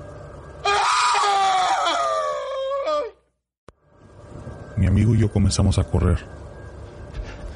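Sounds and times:
person screaming in terror: 0.6 - 3.2
speech: 4.8 - 6.5.

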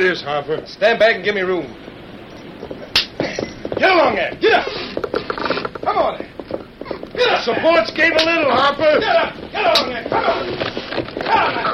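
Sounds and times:
speech: 0.0 - 1.9, 3.8 - 4.9, 5.8 - 6.3, 7.2 - 10.7, 11.3 - 11.7
whip cracking to drive draft horses at a bridge: 2.9 - 3.2.

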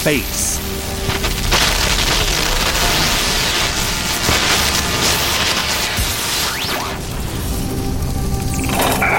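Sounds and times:
speech: 0.0 - 0.8
electrical control box, ceiling lights and outlets exploding: 0.7 - 8.6.

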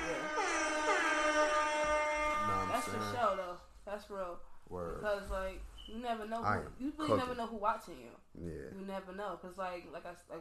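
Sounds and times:
voice wailing out an air horn blast: 0.0 - 3.6
speech: 4.0 - 10.3.

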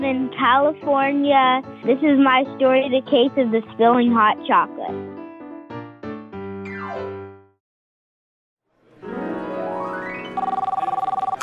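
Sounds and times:
speech: 0.0 - 5.1
new phone's electronic ringtone: 10.3 - 11.4.

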